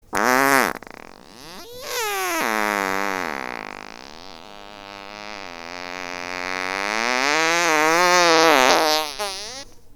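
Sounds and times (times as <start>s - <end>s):
fart: 0.0s - 9.8s.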